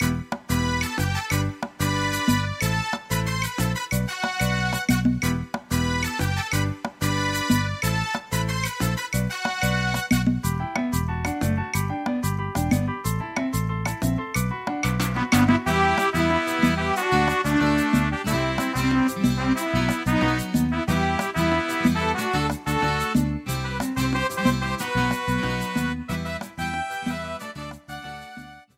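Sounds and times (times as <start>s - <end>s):
modern salsa music: 0.0s - 28.7s.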